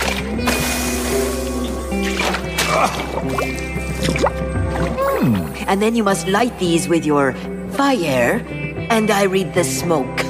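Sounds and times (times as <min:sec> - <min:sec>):
liquid splashing and dripping: 0:00.0 - 0:05.0
speech: 0:02.8 - 0:04.3, 0:05.2 - 0:10.2.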